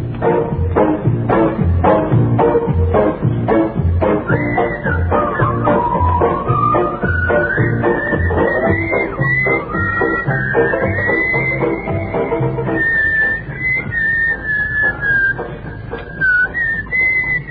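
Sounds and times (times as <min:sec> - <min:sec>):
audience murmuring: 0:00.0 - 0:17.5
audience member whistling a wavering tune: 0:04.2 - 0:17.5.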